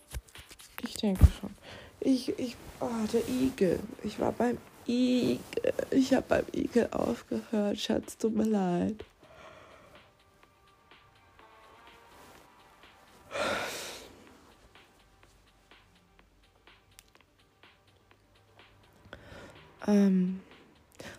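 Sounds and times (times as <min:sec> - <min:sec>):
speech: 0:01.0 - 0:09.1, 0:19.9 - 0:20.4
deep deliberate breaths of holotropic breathing: 0:01.6 - 0:02.0, 0:09.2 - 0:10.3, 0:13.2 - 0:14.7, 0:19.0 - 0:19.8.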